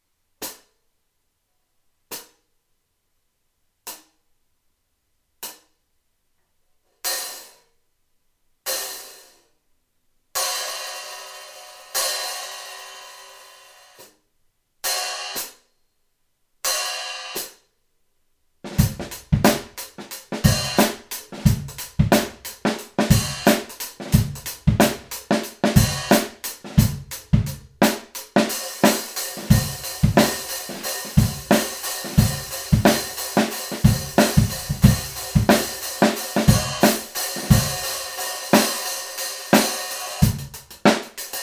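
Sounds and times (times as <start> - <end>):
hi-hat: 18.8 - 41.4.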